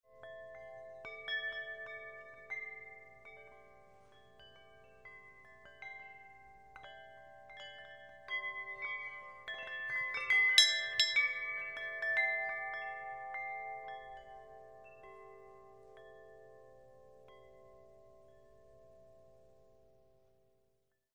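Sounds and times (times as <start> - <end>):
bells: 0.1 - 20.2.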